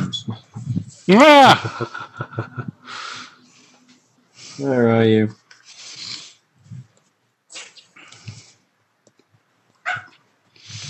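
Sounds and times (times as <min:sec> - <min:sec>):
speech: 0:01.1 - 0:02.5, 0:04.6 - 0:05.4
dog barking in rough breathy bursts: 0:09.8 - 0:10.2.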